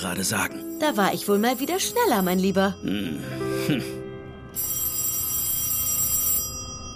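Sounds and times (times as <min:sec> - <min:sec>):
speech: 0:00.0 - 0:04.0
telephone ringing with an electronic trill: 0:00.6 - 0:02.8, 0:04.5 - 0:06.9.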